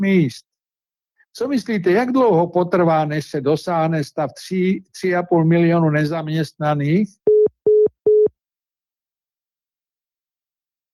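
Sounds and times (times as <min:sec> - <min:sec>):
speech: 0:00.0 - 0:00.5, 0:01.3 - 0:07.2
busy tone after a phone call is cut off: 0:07.3 - 0:08.3.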